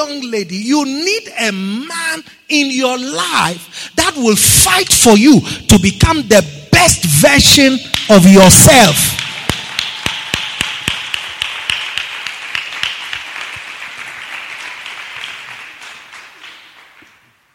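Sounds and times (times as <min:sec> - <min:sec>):
speech: 0:00.0 - 0:09.2
sharp rhythmic claps: 0:07.8 - 0:17.5
crowd applauding: 0:09.2 - 0:17.5.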